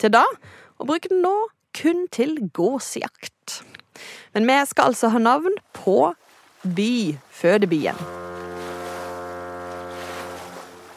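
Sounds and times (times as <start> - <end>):
speech: 0.0 - 8.2
wind at sea: 0.0 - 10.9
wash of water at sea: 6.2 - 10.9
boat engine drone: 7.5 - 10.9.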